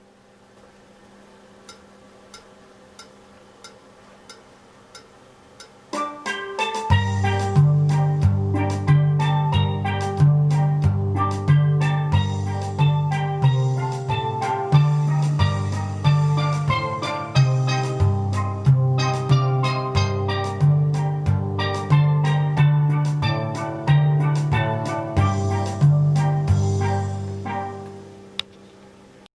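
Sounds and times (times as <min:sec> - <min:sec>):
musical accompaniment: 0:05.9 - 0:28.5
bass theme: 0:06.0 - 0:28.4.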